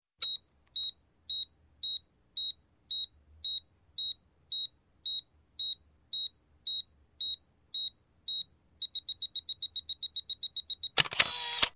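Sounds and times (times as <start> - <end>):
35mm automatic camera self timer beeps: 0.2 - 11.7
35mm automatic camera shutter: 11.0 - 11.7.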